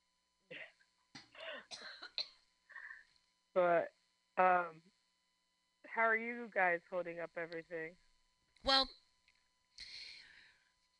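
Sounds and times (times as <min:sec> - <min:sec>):
harsh coughs: 0:01.4 - 0:02.3
speech: 0:03.6 - 0:04.9, 0:06.0 - 0:08.0, 0:08.6 - 0:09.0.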